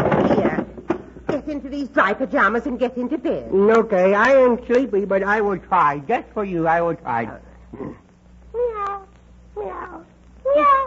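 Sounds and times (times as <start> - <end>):
speech: 1.5 - 8.0
human voice imitating cat meowing: 8.6 - 10.8.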